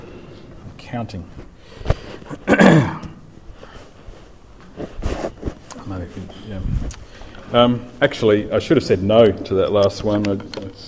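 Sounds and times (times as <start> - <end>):
speech: 0.9 - 3.0, 5.9 - 10.8
raspy coughs: 2.3 - 3.2
throat clearing: 2.3 - 3.2.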